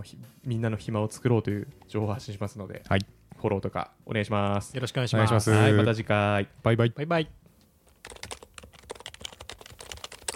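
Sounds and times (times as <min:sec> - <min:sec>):
speech: 0:00.0 - 0:07.4
fast typing on a Happy Hacking Keyboard: 0:07.9 - 0:10.3.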